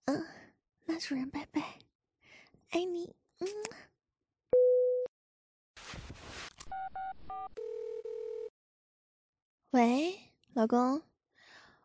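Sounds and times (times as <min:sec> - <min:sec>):
speech: 0:01.0 - 0:01.7, 0:02.7 - 0:03.9, 0:09.7 - 0:11.1
phone ringing tone: 0:06.8 - 0:08.5.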